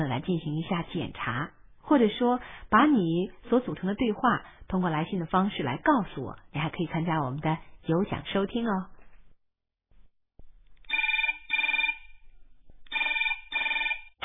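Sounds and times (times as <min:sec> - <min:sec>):
speech: 0:00.0 - 0:08.9
telephone bell ringing: 0:10.9 - 0:12.2, 0:12.9 - 0:14.1.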